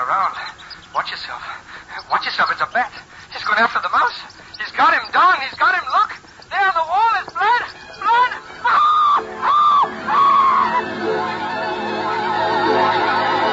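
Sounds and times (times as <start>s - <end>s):
speech: 0.0s - 7.1s
man screaming in terror: 7.4s - 13.4s.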